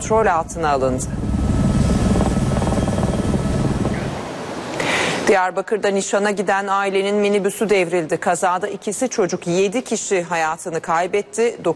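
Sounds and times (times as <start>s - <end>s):
speech: 0.0s - 1.3s, 5.3s - 11.7s
firefighting helicopter rotor working on a wildfire: 0.0s - 4.8s.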